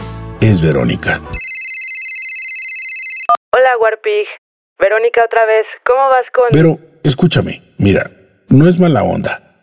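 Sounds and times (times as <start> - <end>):
speech: 0.4 - 1.4, 4.1 - 9.4
telephone ringing with an electronic trill: 1.4 - 3.4.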